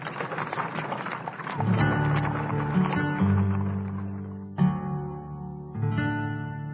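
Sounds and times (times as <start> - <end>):
horse hooves clopping while moving off: 0.0 - 4.8.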